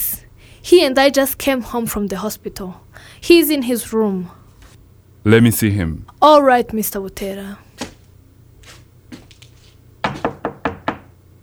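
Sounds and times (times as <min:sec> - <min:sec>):
speech: 0:00.6 - 0:04.4, 0:05.2 - 0:07.6
knocking on a door: 0:10.0 - 0:11.1.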